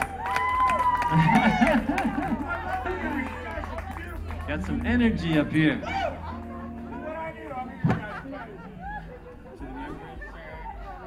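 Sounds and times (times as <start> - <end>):
scattered clapping: 0.0 - 5.8
lively live audience cheering and whooping: 0.0 - 6.9, 8.0 - 11.0
laughter: 0.8 - 11.0
speech: 1.1 - 3.0, 4.5 - 6.1.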